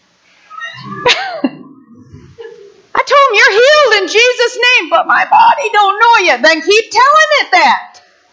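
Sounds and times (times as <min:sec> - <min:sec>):
low murmur of room noise: 0:00.0 - 0:08.3
speech: 0:00.8 - 0:01.4, 0:04.0 - 0:08.0
person coughing in a crowd: 0:00.8 - 0:02.7.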